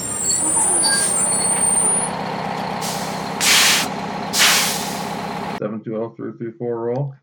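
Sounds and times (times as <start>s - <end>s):
large vehicle brakes squealing: 0.0s - 4.4s
large vehicle engine idling with low rumble: 1.3s - 5.6s
air brake hiss bursts: 2.8s - 5.2s
speech: 5.6s - 7.2s.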